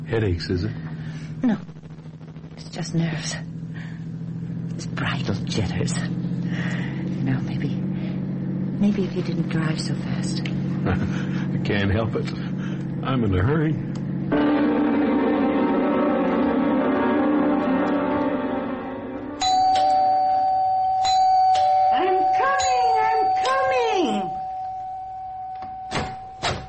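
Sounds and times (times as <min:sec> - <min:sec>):
speech: 0:00.1 - 0:01.8, 0:02.6 - 0:03.5, 0:04.8 - 0:07.8, 0:08.8 - 0:14.8
electric doorbell buzzing: 0:14.3 - 0:26.6.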